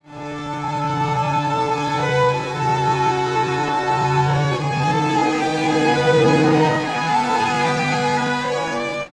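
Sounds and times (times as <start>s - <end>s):
strings pitch-shifted in Pro Tools: 0.7s - 8.3s.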